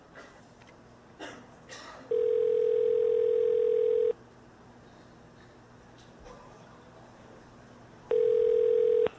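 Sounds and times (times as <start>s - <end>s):
steady electronic telephone tone: 2.1s - 4.2s, 8.1s - 9.1s.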